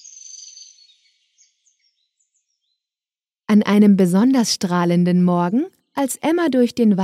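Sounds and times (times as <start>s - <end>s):
birds singing softly in a forest: 0.0s - 3.1s
speech: 3.5s - 7.0s.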